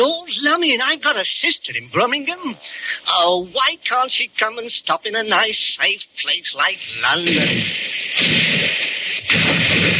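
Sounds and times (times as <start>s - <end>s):
speech: 0.0s - 9.4s
loud booms of artillery guns: 7.2s - 9.9s
artillery guns firing in Regent's Park, London: 7.3s - 9.9s.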